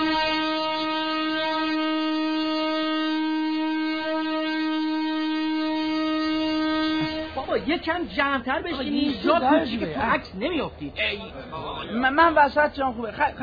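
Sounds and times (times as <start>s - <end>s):
sustained droning tone: 0.0s - 7.9s
train rumbling along: 2.9s - 11.4s
speech: 7.6s - 13.4s.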